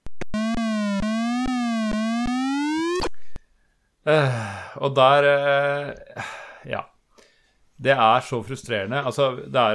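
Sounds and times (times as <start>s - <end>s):
video game grappling hook buzzy electronic tone: 0.0s - 3.1s
speech: 4.0s - 6.9s, 7.8s - 9.7s.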